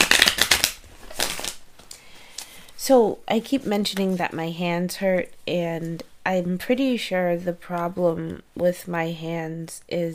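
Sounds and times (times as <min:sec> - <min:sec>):
deck of cards being shuffled: 0:00.0 - 0:02.5
speech: 0:02.9 - 0:10.1.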